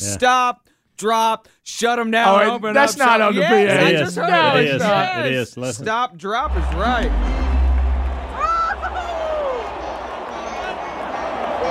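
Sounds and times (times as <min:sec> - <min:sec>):
speech: 0:00.0 - 0:07.6
roar of a large stadium crowd: 0:06.4 - 0:11.6.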